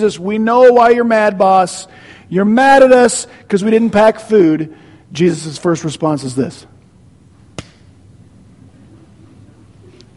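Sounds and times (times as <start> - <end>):
speech: 0.0 - 6.8
low steady room rumble: 0.0 - 10.1
hand slapping a head: 7.6 - 7.9.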